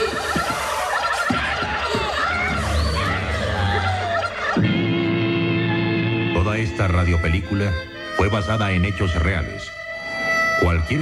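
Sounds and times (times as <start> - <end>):
turkey gobbling: 0.0 - 4.8
excited shouting: 0.0 - 6.2
laughter: 0.0 - 8.2
speech: 6.8 - 9.8, 10.6 - 11.0.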